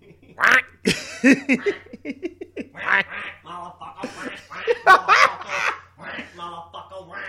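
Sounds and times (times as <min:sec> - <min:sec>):
laughter: 0:00.0 - 0:03.2, 0:03.8 - 0:06.5
duck quacks in a trap beat: 0:00.4 - 0:00.8, 0:02.7 - 0:07.2.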